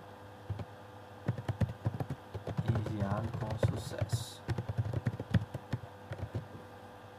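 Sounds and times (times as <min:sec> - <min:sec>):
typing on a computer keyboard: 0:00.5 - 0:00.7, 0:01.3 - 0:06.5
speech: 0:03.0 - 0:04.5.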